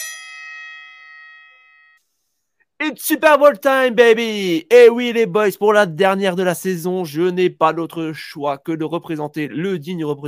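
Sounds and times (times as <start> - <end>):
bright metallic bell strike: 0.0 - 2.0
speech: 2.9 - 10.2.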